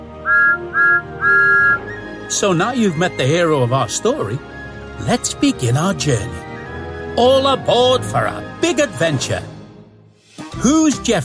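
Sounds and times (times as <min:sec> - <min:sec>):
whistle of a little blue steam tank engine with six small wheels tooting: 0:00.2 - 0:02.1
speech: 0:02.3 - 0:06.5, 0:07.2 - 0:09.5, 0:10.6 - 0:11.2.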